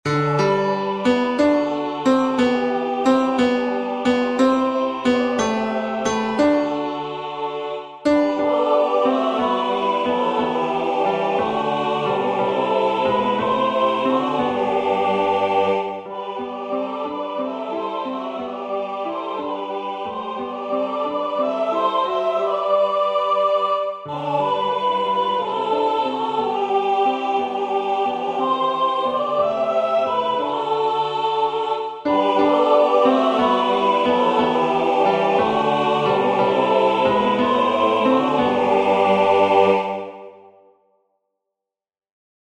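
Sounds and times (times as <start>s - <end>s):
tenors singing: 0.1s - 40.5s.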